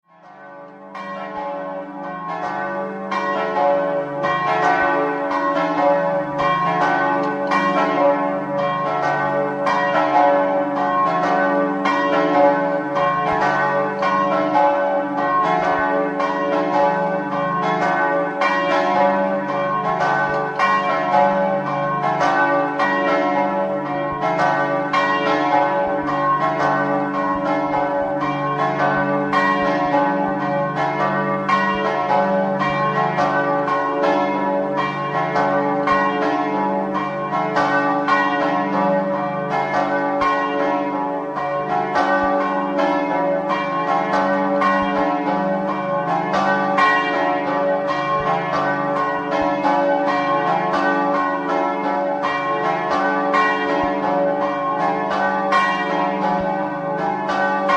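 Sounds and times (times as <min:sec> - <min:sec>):
bells ringing: 0:00.5 - 0:57.7.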